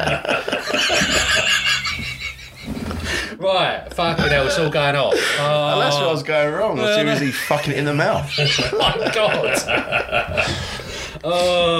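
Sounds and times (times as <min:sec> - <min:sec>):
speech: 0:00.0 - 0:01.6, 0:03.4 - 0:11.7
laughter: 0:00.0 - 0:03.3, 0:06.8 - 0:11.2
person imitating a horse neighing: 0:08.2 - 0:09.0.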